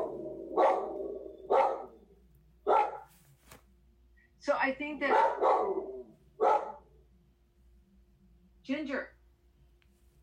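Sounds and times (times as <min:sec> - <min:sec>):
dog barking: 0:00.0 - 0:03.2, 0:05.0 - 0:07.0
speech: 0:04.5 - 0:05.8, 0:08.7 - 0:09.2.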